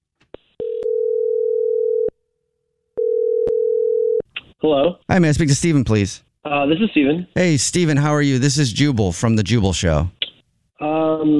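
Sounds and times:
steady telephone ringing tone: 0.6s - 2.1s, 3.0s - 4.2s
speech: 4.6s - 10.2s.

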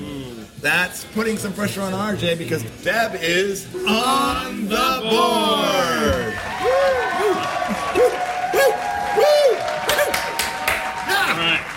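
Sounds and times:
speech: 0.6s - 8.2s
crowd cheering with whoops and shouts: 4.7s - 11.7s
crowd applause: 6.4s - 11.7s.

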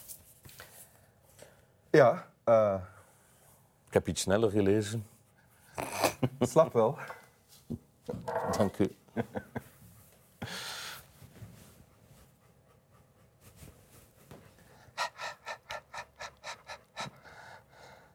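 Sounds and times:
speech: 2.0s - 3.0s, 3.9s - 5.1s, 6.2s - 9.6s
laughter: 9.2s - 9.7s
dog panting: 9.5s - 18.1s.

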